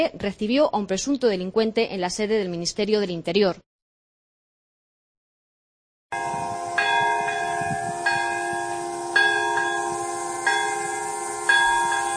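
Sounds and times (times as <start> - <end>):
speech: 0.0 - 3.7
memorial bells ringing: 6.1 - 12.1
steady hiss: 6.4 - 12.1.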